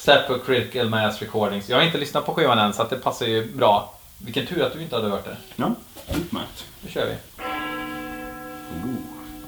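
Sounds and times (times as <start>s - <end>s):
speech: 0.0s - 7.3s
large church bell struck: 7.4s - 9.4s.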